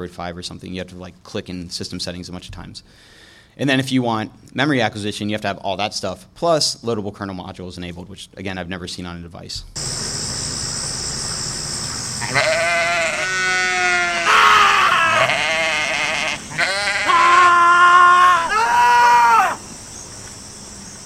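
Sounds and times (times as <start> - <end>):
speech: 0.0 - 10.0
steady high-pitched insect-like hiss: 9.8 - 21.0
goat screaming in long wavering bleats: 12.2 - 19.6.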